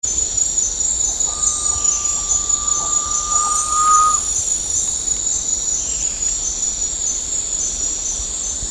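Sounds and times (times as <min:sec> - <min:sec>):
continuous shrill insect drone: 0:00.8 - 0:04.6
garnet pitta whistle call at Danum: 0:01.3 - 0:04.3.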